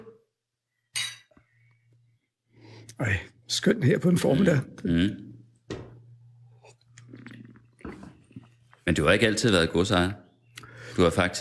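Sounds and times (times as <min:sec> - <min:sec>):
glasses clinking in a bright ringing toast: 0:00.9 - 0:01.4
speech: 0:02.9 - 0:05.3, 0:08.9 - 0:10.2, 0:11.0 - 0:11.4.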